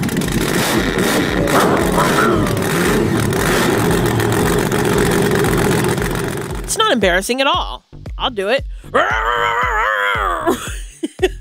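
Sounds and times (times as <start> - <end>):
voice imitating remote control monster truck engine: 0.5 - 6.8, 9.0 - 10.6
speech: 7.0 - 9.6, 10.5 - 10.7.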